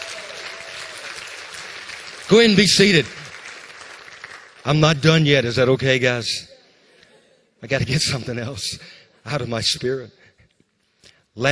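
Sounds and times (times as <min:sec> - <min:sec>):
audience applause: 0:00.0 - 0:05.1
speech: 0:02.3 - 0:03.2, 0:04.6 - 0:06.5, 0:07.6 - 0:10.3, 0:11.4 - 0:11.5.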